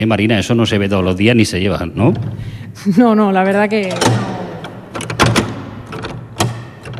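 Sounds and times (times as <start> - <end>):
speech: 0.0 - 4.3
old wooden door being closed: 3.8 - 6.9.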